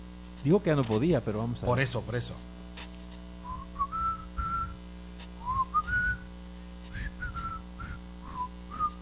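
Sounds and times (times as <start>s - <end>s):
steady low hum: 0.0s - 9.0s
speech: 0.4s - 2.6s
person whistling a halting tune: 3.4s - 4.8s, 5.4s - 6.3s, 6.9s - 9.0s.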